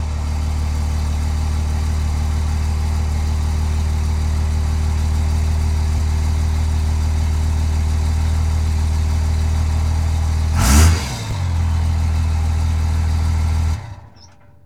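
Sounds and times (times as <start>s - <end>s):
Ram diesel truck idling and switching off: 0.0s - 14.6s.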